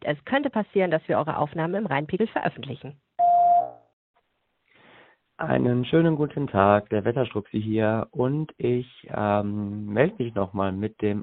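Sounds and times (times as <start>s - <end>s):
speech: 0.0s - 3.0s, 5.4s - 11.2s
answering machine beep: 3.2s - 3.8s.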